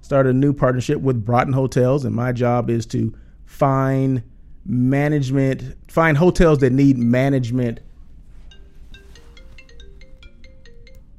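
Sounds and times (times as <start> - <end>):
speech: 0.0 - 7.9
mobile phone ringtone: 7.0 - 11.1.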